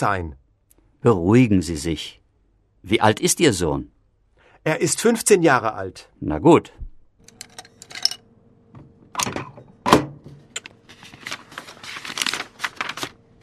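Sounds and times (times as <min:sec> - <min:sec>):
speech: 0:00.0 - 0:00.4, 0:01.0 - 0:02.2, 0:02.8 - 0:04.0, 0:04.6 - 0:06.9
sheet of paper rustling: 0:10.8 - 0:13.4.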